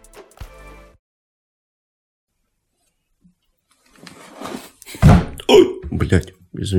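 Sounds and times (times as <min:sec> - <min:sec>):
chair being bumped with wooden thunks: 0:05.0 - 0:06.0
speech: 0:06.1 - 0:06.7.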